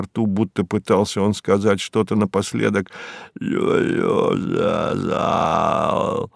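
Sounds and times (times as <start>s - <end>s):
speech: 0.0s - 6.3s
man groaning and choking as he dies, gasping for air: 3.4s - 6.3s.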